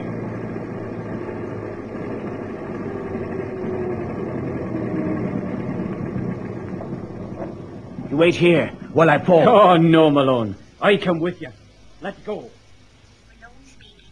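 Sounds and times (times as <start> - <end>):
car pulling up and engine idling: 0.0 - 13.3
speech: 8.2 - 12.6.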